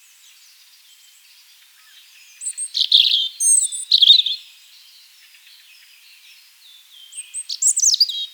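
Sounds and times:
European robin Erithacus rubecula twittering: 1.8s - 4.4s, 7.1s - 8.3s.

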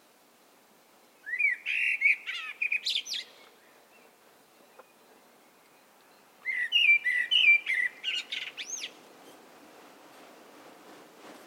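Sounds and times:
Eurasian blackbird Turdus merula singing: 1.2s - 9.0s.

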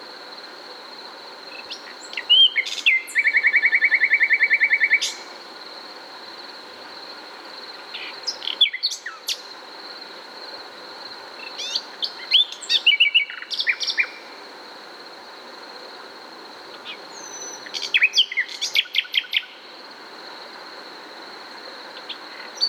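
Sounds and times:
Common nightingale Luscinia megarhynchos song: 1.5s - 5.5s, 7.8s - 9.6s, 11.4s - 14.4s, 16.7s - 19.6s, 21.9s - 22.6s.

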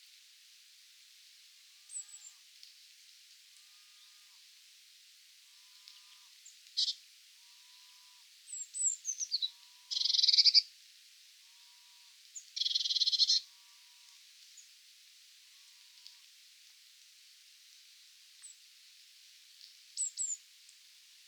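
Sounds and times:
Eurasian blue tit Cyanistes caeruleus calling: 6.8s - 7.0s, 8.5s - 10.6s, 12.6s - 13.4s.

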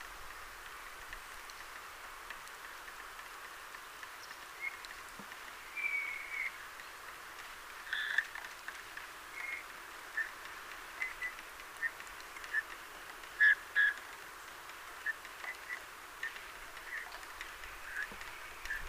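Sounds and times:
background hiss: 0.0s - 18.8s
Eurasian bullfinch Pyrrhula pyrrhula soft piping whistle calls: 5.7s - 6.6s.

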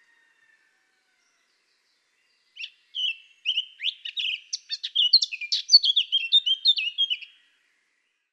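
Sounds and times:
Eurasian blackcap Sylvia atricapilla singing a warble: 2.3s - 7.4s.

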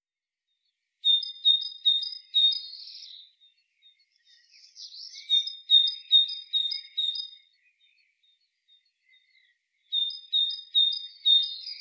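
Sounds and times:
great tit Parus major calls: 1.0s - 11.7s.

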